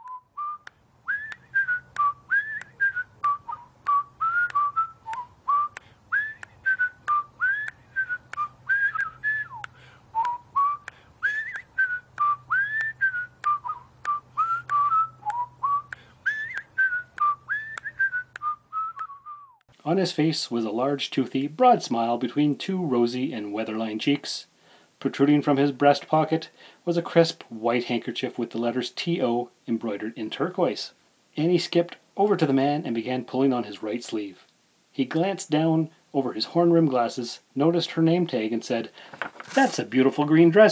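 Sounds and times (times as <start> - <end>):
elderly man whistling a bright bouncy melody while walking along a street: 0.0 - 19.6
speech: 19.9 - 40.7.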